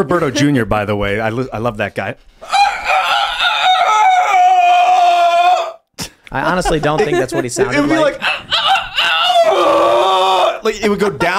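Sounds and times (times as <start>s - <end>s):
speech: 0.0s - 2.6s, 6.3s - 8.6s, 10.6s - 11.3s
rooster crowing: 2.4s - 5.8s, 7.9s - 10.6s
laughter: 6.0s - 9.6s.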